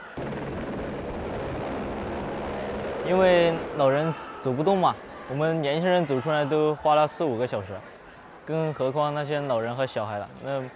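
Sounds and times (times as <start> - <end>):
rescue helicopter rotor and engine roar over a flood-hit area: 0.0 - 6.6
speech: 3.1 - 7.9, 8.5 - 10.7.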